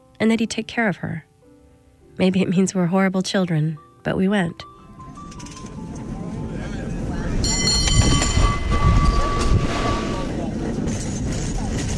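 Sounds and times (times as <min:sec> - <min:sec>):
speech: 0:00.2 - 0:01.3, 0:02.2 - 0:04.7
cable car rolling along its rails: 0:05.2 - 0:11.9
high metallic cable car wheel squeal: 0:07.4 - 0:10.5.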